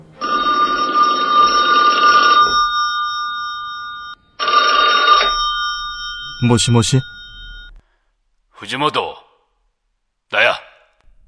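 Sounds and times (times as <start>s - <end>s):
telephone ringing: 0.2s - 7.8s
speech: 6.4s - 7.2s, 8.6s - 9.2s.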